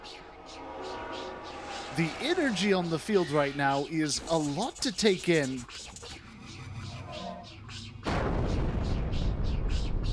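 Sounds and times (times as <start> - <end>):
quiet tonal backdrop: 0.0 - 10.1
speech: 2.0 - 6.0
loud explosion on a battlefield: 8.1 - 9.5.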